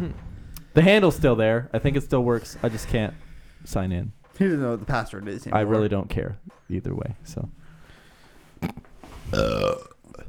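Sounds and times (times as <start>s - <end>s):
speech: 0.0s - 7.6s, 8.6s - 9.9s
burp: 8.6s - 10.2s
throaty gulp: 8.6s - 10.2s.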